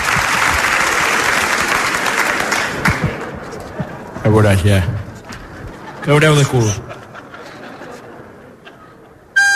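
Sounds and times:
audience applause: 0.0s - 4.2s
speech: 4.2s - 5.0s, 6.0s - 6.9s
laughter: 5.5s - 9.4s.

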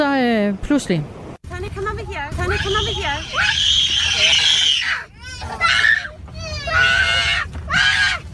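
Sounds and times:
speech: 0.4s - 5.9s
children shrieking and squealing at a swimming pool: 2.5s - 8.3s.

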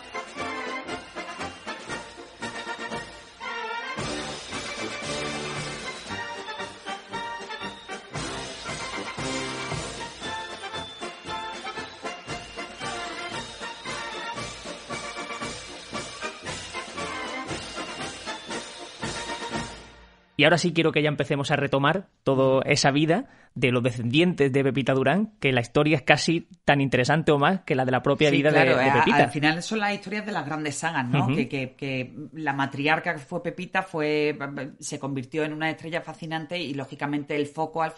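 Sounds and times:
band playing a military march: 0.0s - 20.0s
speech: 20.4s - 37.9s.

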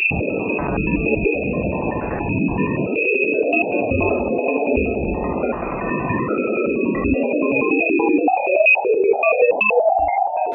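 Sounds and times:
high electronic whine of sonified magnetic field data: 0.1s - 10.5s
warbling synthesizer-like tones of sonified Ganymede and Jupiter magnetic field fluctuations: 0.1s - 10.5s.

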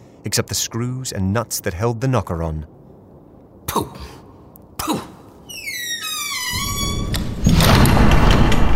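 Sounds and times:
speech: 0.2s - 2.8s, 3.8s - 4.2s
heavy house door swinging on a long creaking hinge: 5.5s - 8.7s
heavy house door shutting with a loud thud and rumble: 6.1s - 8.7s.

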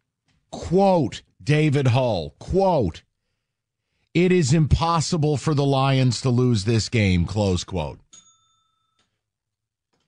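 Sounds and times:
speech: 0.7s - 3.1s, 4.2s - 8.1s
small bell struck: 8.1s - 9.1s.

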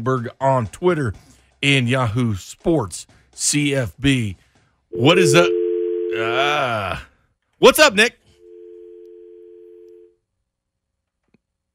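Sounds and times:
speech: 0.0s - 8.2s
telephone dial tone after a dropped call: 8.4s - 10.1s.

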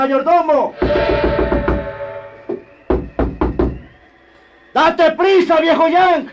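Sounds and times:
speech: 0.0s - 1.4s, 4.8s - 6.3s
heavy pounding on a house door: 2.9s - 3.8s.

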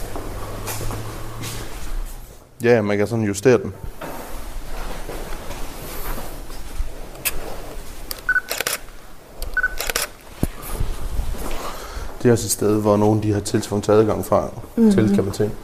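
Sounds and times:
speech: 2.6s - 4.0s, 12.2s - 15.6s
camera shutter clicking while taking photos: 8.1s - 10.2s
short electronic camera focus beeps: 8.3s - 8.5s, 9.6s - 9.8s.

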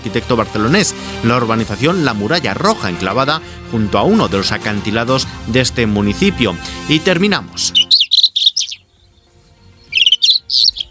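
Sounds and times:
speech: 0.1s - 7.9s
rufous-tailed scrub robin singing: 7.6s - 10.8s.

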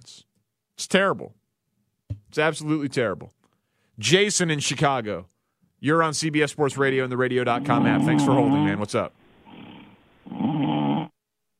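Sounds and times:
speech: 0.9s - 1.4s, 2.3s - 3.4s, 4.0s - 9.2s
man snoring over a telephone line: 7.6s - 8.8s, 9.4s - 11.2s.

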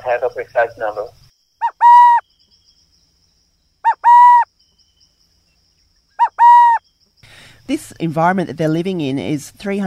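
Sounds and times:
speech: 0.0s - 1.2s, 7.7s - 9.8s
burrowing owl calling: 1.6s - 2.2s, 3.8s - 4.5s, 6.2s - 6.8s.

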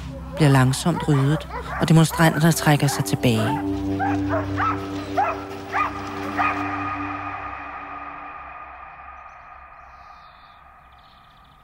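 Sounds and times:
police dogs barking at demonstrators on Hundige Strandvej in Greve: 0.0s - 7.5s
speech: 0.4s - 5.0s.

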